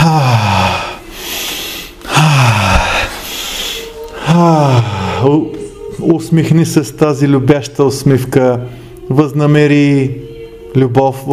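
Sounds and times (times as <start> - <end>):
deep breaths drawn in during a guided prayer: 0.3 - 4.3
speech: 4.6 - 5.5, 6.3 - 10.2, 10.8 - 11.3.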